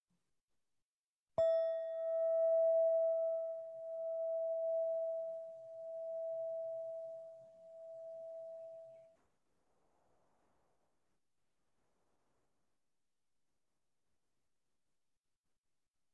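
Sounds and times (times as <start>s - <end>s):
meditation bell ringing: 1.4s - 9.0s.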